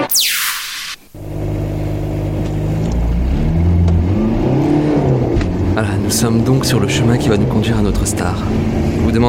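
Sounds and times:
whooshing sweep: 0.1 - 1.1
car engine starting up and revving: 1.2 - 9.2
speech: 6.2 - 9.2.

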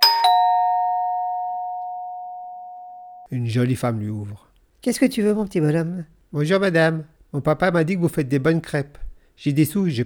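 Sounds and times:
doorbell at a garden door chiming, rung by a little boy: 0.0 - 3.3
speech: 3.3 - 10.0.

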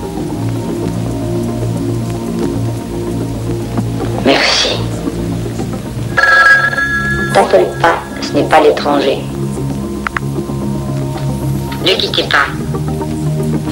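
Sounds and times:
steady rain-like patter: 0.0 - 6.2, 8.7 - 13.7
low hum: 5.3 - 9.6
telephone ringing: 6.1 - 9.1
speech: 7.4 - 9.4, 11.8 - 12.6.

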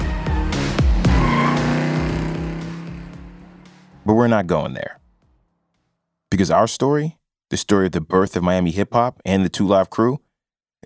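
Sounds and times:
tire squeal: 0.3 - 4.0
convertible car engines revving on Ocean Drive in South Beach Miami: 0.4 - 4.5
speech: 4.1 - 5.0, 6.3 - 10.2.

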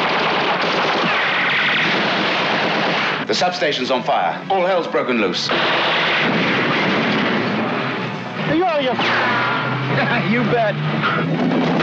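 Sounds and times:
machine guns firing a sustained barrage: 0.0 - 3.3, 5.5 - 9.8, 11.3 - 11.8
speech: 3.3 - 6.4, 8.6 - 11.8.

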